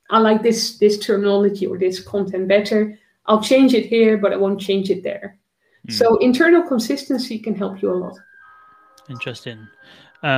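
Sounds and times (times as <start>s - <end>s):
speech: 0.1s - 8.3s, 9.1s - 10.3s
ice cream van chime: 7.9s - 10.3s.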